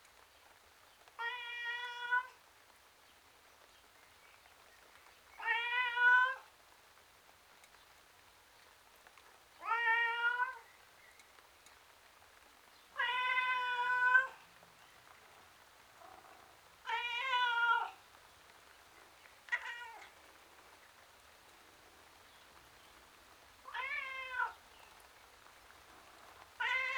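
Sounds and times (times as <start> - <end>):
domestic tom cat meowing outside: 1.2 - 2.4, 5.4 - 6.5, 9.6 - 10.6, 13.0 - 14.4, 16.0 - 18.0, 19.5 - 20.1, 23.7 - 24.6, 26.6 - 26.9.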